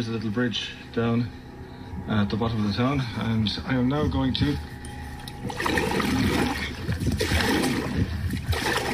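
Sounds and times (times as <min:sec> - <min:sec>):
speech: 0:00.0 - 0:04.7, 0:05.4 - 0:06.1
kayak paddle stroking through a tidal river: 0:05.4 - 0:08.9.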